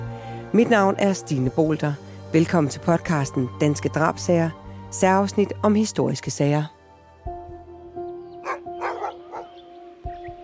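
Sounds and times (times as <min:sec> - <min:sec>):
speech: 0:00.5 - 0:06.8
hunting dogs barking during a duck hunt at a lake: 0:08.4 - 0:09.6.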